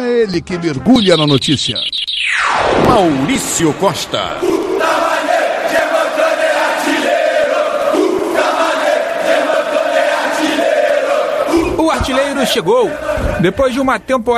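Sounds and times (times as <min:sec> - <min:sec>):
speech: 0:00.1 - 0:05.1, 0:12.0 - 0:14.3
large crowd of football fans singing the club's chant: 0:04.3 - 0:13.6.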